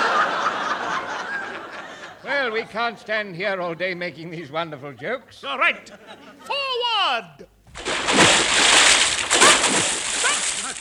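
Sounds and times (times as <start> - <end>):
laughter: 0.0 - 2.6, 5.8 - 6.8
speech: 2.5 - 7.9
people wading through shallow water near a river: 7.7 - 10.7.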